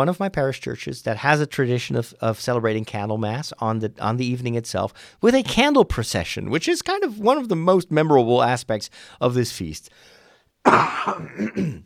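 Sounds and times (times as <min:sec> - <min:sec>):
speech: 0:00.0 - 0:11.8
throat clearing: 0:10.7 - 0:11.8.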